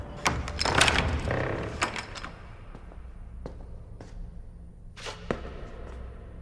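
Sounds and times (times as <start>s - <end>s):
large iron key rattling as a prison caretaker unlocks the gates: 0.2s - 2.5s.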